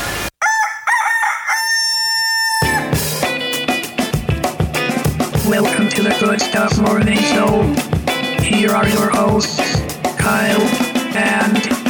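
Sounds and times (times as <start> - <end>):
rooster crowing: 0.4 - 3.0
upbeat music with drums: 2.6 - 11.8
speech: 6.0 - 11.8.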